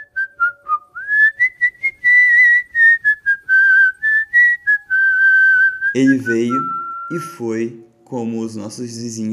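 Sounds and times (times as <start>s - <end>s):
person whistling a wandering melody: 0.0s - 7.4s
speech: 6.0s - 9.3s.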